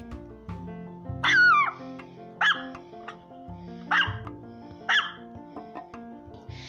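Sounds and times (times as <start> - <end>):
soft music: 0.0 - 6.6
dog barking: 2.4 - 2.8, 3.9 - 4.2, 4.9 - 5.2.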